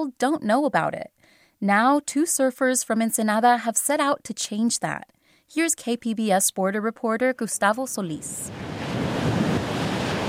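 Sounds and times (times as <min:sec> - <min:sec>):
speech: 0:00.0 - 0:08.8
ocean surf roaring along the coast: 0:08.4 - 0:10.2
wind: 0:08.5 - 0:10.2.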